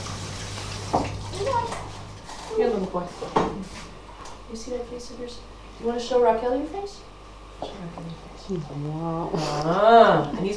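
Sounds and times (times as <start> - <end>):
water running from a tap while washing a child's face: 0.0 - 2.1
speech: 2.6 - 3.9, 4.5 - 10.5.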